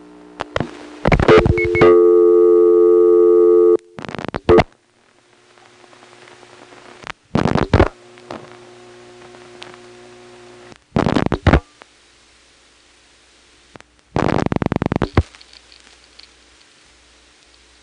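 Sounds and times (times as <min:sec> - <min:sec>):
bursts of phone line noise: 0:00.0 - 0:17.8
faint static hiss: 0:00.0 - 0:17.8
telephone ringback tone from a 434 ESS switch ringing number: 0:01.3 - 0:04.0.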